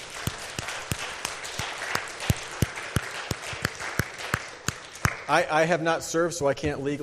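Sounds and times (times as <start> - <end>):
audience applause: 0.0 - 5.4
sharp claps: 0.0 - 5.5
speech: 5.3 - 7.0.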